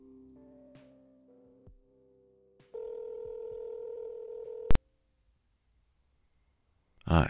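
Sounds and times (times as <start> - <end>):
telephone line tones shifting in pitch: 2.8 - 4.8.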